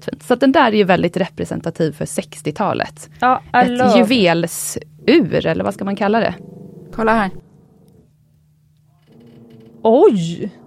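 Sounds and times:
speech: 0.0 - 7.5, 9.8 - 10.6
dog growling low: 6.1 - 8.1, 9.1 - 10.6.

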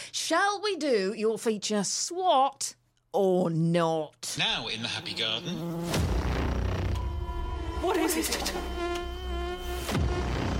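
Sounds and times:
speech: 0.3 - 6.1, 7.8 - 9.0
wasp buzzing: 5.1 - 10.5.

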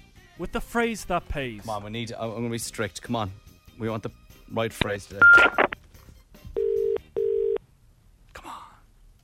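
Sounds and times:
speech: 0.4 - 5.7
telephone ringback tone double ring: 5.2 - 5.8, 6.6 - 7.6.

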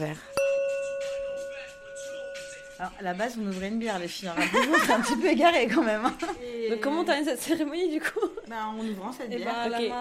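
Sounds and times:
speech: 0.0 - 0.3, 2.8 - 9.9
Tibetan singing bowl ringing with a sustained tone: 0.0 - 4.3.

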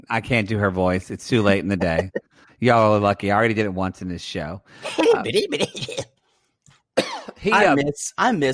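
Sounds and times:
speech: 0.1 - 6.2, 7.0 - 8.5
laughter: 1.7 - 2.2, 4.8 - 6.0
raspy coughs: 4.9 - 6.2, 7.0 - 7.4.

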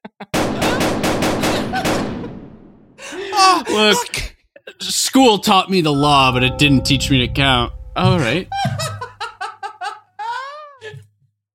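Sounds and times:
laughter: 0.0 - 2.1, 3.0 - 4.3, 8.5 - 10.9
rapid gunshots: 0.4 - 3.0
speech: 3.6 - 8.9.

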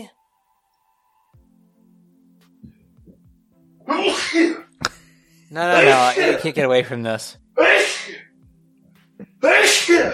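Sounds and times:
speech: 3.9 - 4.6, 5.5 - 7.9, 9.4 - 10.1
person sneezing: 3.9 - 4.7, 5.7 - 6.4, 7.6 - 8.3, 9.2 - 10.1.

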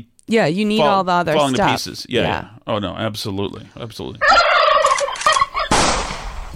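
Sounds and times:
speech: 0.0 - 4.6
flock of turkeys gobbling: 4.2 - 5.8.

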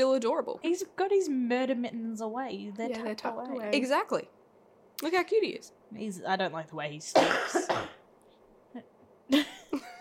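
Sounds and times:
speech: 0.0 - 4.4, 5.0 - 8.0, 8.7 - 9.9
coughing: 7.1 - 8.1.

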